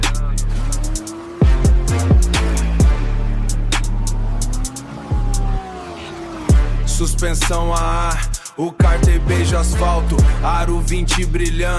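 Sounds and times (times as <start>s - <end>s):
car engine revving hard: 0.0s - 11.7s
sharp tire-squeal-like sweeps: 0.4s - 7.9s
speech: 7.2s - 11.7s.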